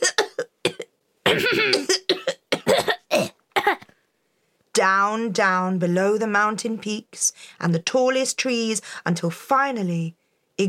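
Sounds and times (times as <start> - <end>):
person coughing in harsh bursts: 0.0 - 3.9
speech: 4.8 - 10.6.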